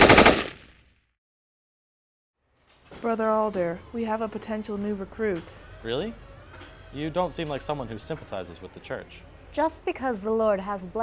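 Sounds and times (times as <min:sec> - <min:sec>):
short burst of automatic gunfire: 0:00.0 - 0:00.7
speech: 0:03.0 - 0:06.3, 0:06.9 - 0:11.0.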